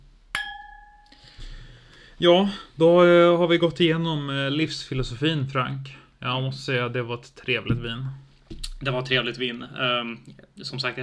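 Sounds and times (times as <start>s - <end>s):
wine glasses clinking in a toast: 0.4s - 1.3s
speech: 2.2s - 8.2s, 8.8s - 11.0s.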